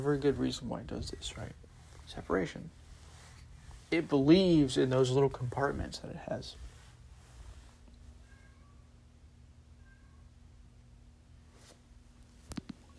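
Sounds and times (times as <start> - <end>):
speech: 0.0 - 2.8, 3.9 - 6.7
low steady hum: 0.0 - 12.9
cat meowing: 8.2 - 8.9, 9.8 - 10.4.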